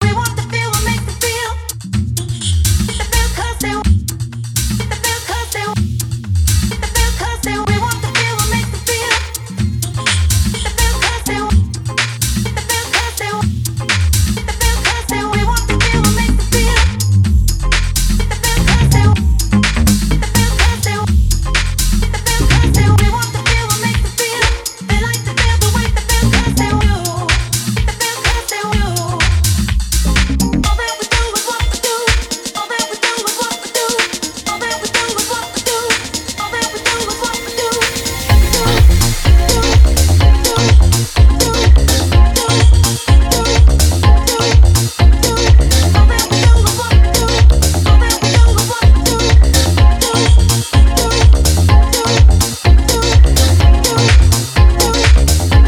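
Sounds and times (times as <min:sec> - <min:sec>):
dub music: 0:00.0 - 0:55.6.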